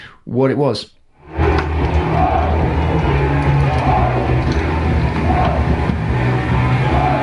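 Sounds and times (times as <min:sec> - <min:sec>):
speech: 0:00.3 - 0:01.4
distant crowd of men chanting a short slogan in unison: 0:01.4 - 0:07.2.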